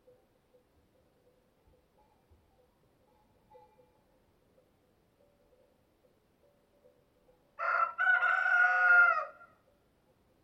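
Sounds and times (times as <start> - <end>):
rooster crowing: 7.6 - 9.6.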